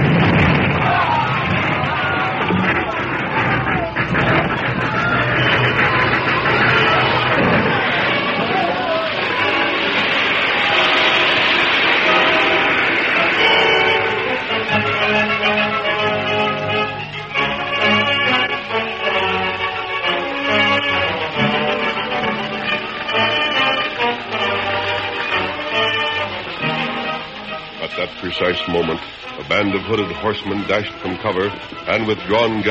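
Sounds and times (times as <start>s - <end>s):
rumbling debris: 0.0s - 32.6s
train engine toppling and crashing into a deep gorge: 0.0s - 32.6s
voices crying out: 0.5s - 15.7s
speech: 29.6s - 32.6s.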